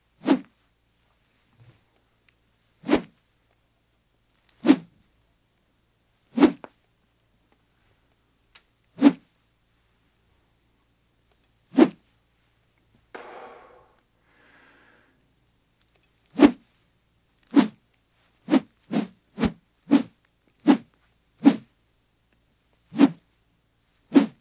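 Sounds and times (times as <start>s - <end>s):
metal rod swishing: 0.2s - 0.4s, 2.8s - 3.1s, 4.6s - 4.9s, 6.4s - 6.6s, 9.0s - 9.2s, 11.8s - 12.0s, 16.4s - 16.6s, 17.5s - 17.8s, 18.5s - 20.1s, 21.4s - 21.7s, 23.0s - 23.2s, 24.1s - 24.3s.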